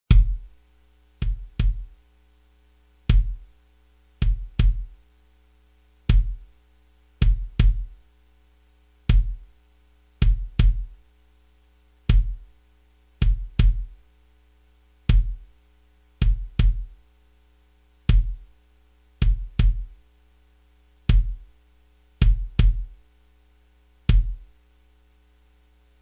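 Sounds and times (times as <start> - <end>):
drum kit bass drum: 0.1 - 0.6, 1.2 - 2.0, 3.0 - 3.6, 4.2 - 5.0, 6.0 - 6.6, 7.2 - 8.0, 9.0 - 9.6, 10.2 - 11.0, 12.1 - 12.6, 13.2 - 14.0, 15.1 - 15.6, 16.2 - 17.0, 18.1 - 18.6, 19.2 - 20.0, 21.1 - 21.6, 22.2 - 23.0, 24.1 - 24.6.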